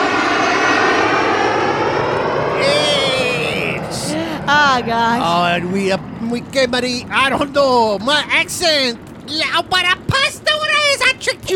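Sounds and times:
jet engine roar made of burps: 0.0 - 11.5
speech: 4.8 - 11.5.

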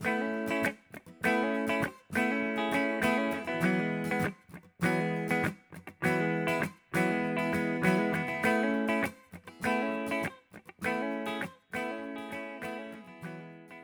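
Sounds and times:
two layered acoustic guitar parts strumming full chords: 0.0 - 13.8.

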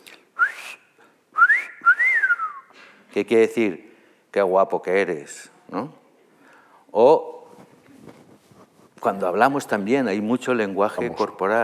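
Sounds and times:
person whistling: 0.4 - 2.7
speech: 3.2 - 6.0, 6.9 - 7.4, 9.0 - 11.6.

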